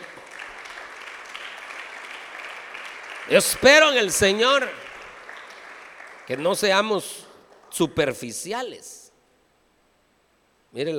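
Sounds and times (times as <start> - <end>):
audience applauding: 0.0 - 7.8
speech: 3.3 - 4.8, 6.3 - 9.0, 10.7 - 10.9.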